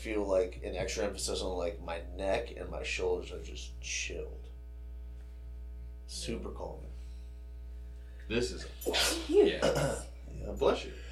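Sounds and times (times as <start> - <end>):
speech: 0.0 - 4.5, 6.1 - 6.9, 8.3 - 11.1
person sneezing: 8.8 - 10.1.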